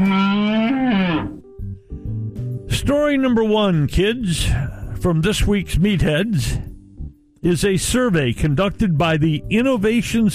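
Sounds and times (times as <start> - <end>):
cow mooing: 0.0 - 1.4
speech: 2.8 - 6.7, 7.4 - 10.3.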